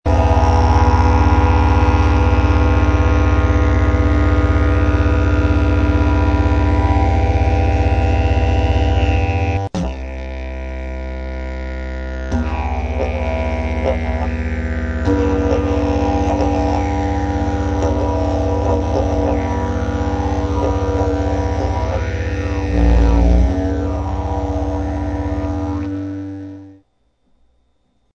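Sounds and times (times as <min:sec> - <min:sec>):
chord: 0:00.1 - 0:26.8.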